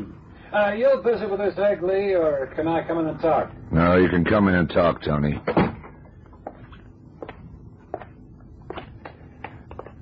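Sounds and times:
low steady hum: 0.0 - 9.9
speech: 0.5 - 5.7
soft footsteps crossing a quiet room: 6.3 - 9.9.

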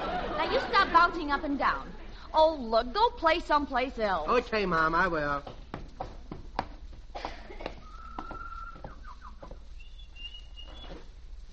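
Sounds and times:
laughter: 0.0 - 2.1
faint hum: 0.0 - 11.5
speech: 0.5 - 5.6
small caged bird chirping and trilling: 9.0 - 11.0.

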